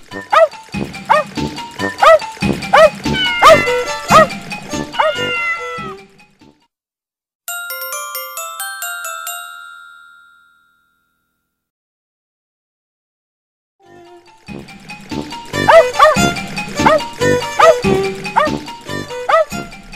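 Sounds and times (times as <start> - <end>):
puppy barking rapid yips: 0.3 - 1.3, 1.9 - 5.8, 15.6 - 18.6, 19.2 - 19.9
short ringing chime: 7.5 - 11.5.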